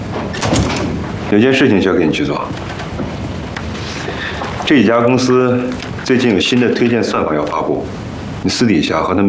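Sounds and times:
door being shut with rattle: 0.2s - 1.7s, 2.4s - 3.6s
speech: 1.3s - 2.8s, 4.7s - 9.2s.

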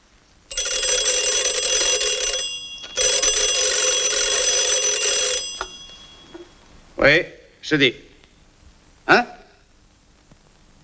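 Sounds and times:
telephone bell ringing in rattling bursts: 0.5s - 6.6s
speech: 7.0s - 8.1s, 9.1s - 9.3s.

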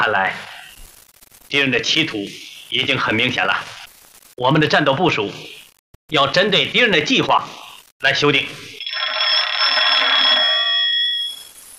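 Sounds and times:
speech: 0.0s - 0.5s, 1.5s - 3.8s, 4.4s - 8.8s
telephone ringing with a bright metallic ring: 8.8s - 11.6s.

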